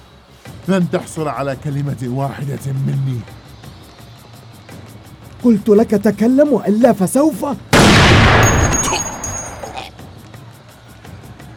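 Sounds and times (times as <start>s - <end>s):
speech: 0.7s - 3.4s, 5.4s - 7.7s
sniper rifle gunshot: 7.8s - 9.8s.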